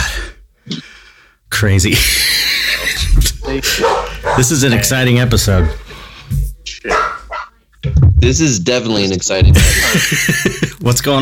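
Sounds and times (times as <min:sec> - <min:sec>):
speech: 0:01.6 - 0:02.4, 0:03.6 - 0:07.0, 0:08.2 - 0:11.2
laughter: 0:02.3 - 0:04.9, 0:09.4 - 0:11.1
dog barking and yipping: 0:03.4 - 0:04.8, 0:05.4 - 0:05.9, 0:06.8 - 0:07.6.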